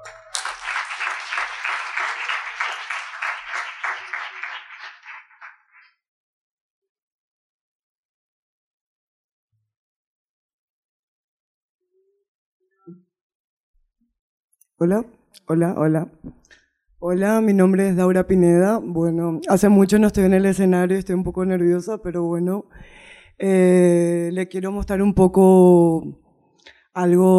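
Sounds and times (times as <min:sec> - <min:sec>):
crowd applauding loudly and steadily: 0:00.0 - 0:05.9
speech: 0:14.8 - 0:16.4, 0:17.0 - 0:26.2, 0:27.0 - 0:27.3.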